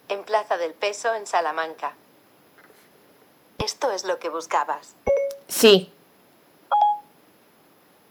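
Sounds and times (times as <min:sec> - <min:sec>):
speech: 0:00.3 - 0:02.0, 0:03.6 - 0:06.0
electronic phone dialing tones: 0:06.7 - 0:07.0.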